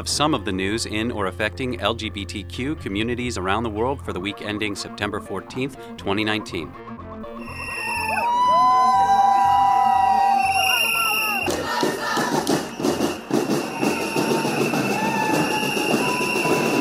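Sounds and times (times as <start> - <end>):
speech: 0.0 - 7.4
high sustained tones: 7.2 - 16.8
crowd of many voices and shouts marching in a Pride parade in Sarajevo: 7.4 - 16.8.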